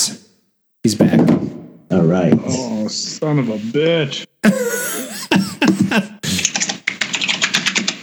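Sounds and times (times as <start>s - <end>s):
speech: 2.1s - 4.7s
laughter: 4.4s - 6.7s
typing on a computer keyboard: 6.3s - 8.0s.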